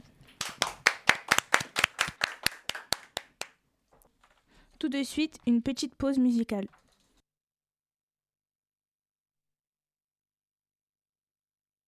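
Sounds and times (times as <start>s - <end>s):
crisp hand claps of applause for a student: 0.3s - 3.6s
speech: 4.8s - 6.8s.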